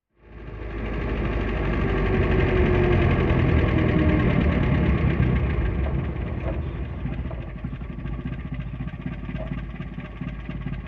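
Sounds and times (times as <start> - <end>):
Riley car stopping slowly: 0.2 - 10.8.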